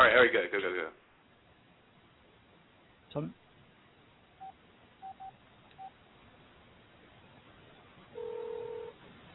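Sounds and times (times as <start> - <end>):
speech: 0.2 - 1.0, 3.1 - 3.4
phone keypad beeps of a phone being dialed over a phone line: 4.4 - 5.9
ringback tone over a phone line: 8.2 - 9.0.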